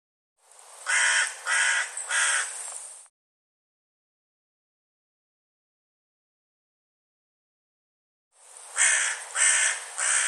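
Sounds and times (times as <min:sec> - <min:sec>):
bird giving loud hoarse caws: 0:00.9 - 0:02.6, 0:08.8 - 0:10.2.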